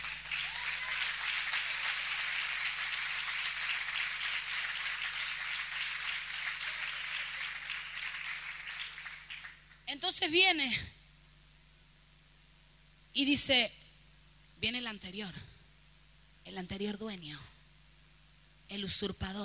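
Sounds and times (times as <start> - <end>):
congregation applauding: 0.0 - 9.8
speech: 9.9 - 11.0, 13.2 - 13.8, 14.6 - 15.5, 16.5 - 17.5, 18.7 - 19.4.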